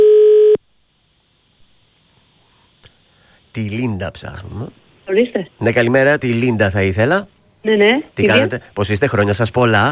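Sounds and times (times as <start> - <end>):
steady electronic telephone ringing tone on a call: 0.0 - 0.6
speech: 3.6 - 9.9.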